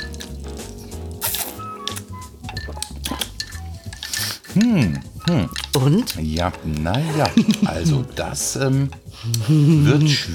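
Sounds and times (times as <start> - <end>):
steady tonal background: 0.0 - 10.3
teaspoon clinking against a glass while tasting a drink: 1.2 - 7.8
speech: 4.6 - 10.3.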